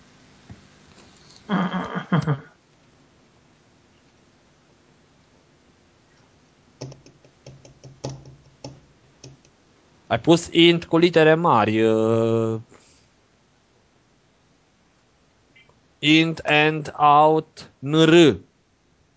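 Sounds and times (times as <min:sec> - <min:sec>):
speech: 0:02.3 - 0:02.5, 0:10.1 - 0:12.7, 0:16.0 - 0:18.5
computer keyboard typing: 0:06.8 - 0:09.5.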